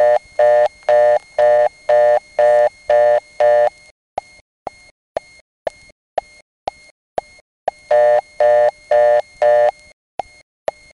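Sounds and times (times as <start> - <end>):
pulsing telephone tone bursts: 0.0 - 3.9, 7.7 - 10.9.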